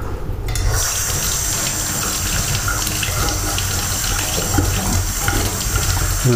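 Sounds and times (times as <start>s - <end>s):
tap water running while a lid is rinsed: 0.5s - 6.3s.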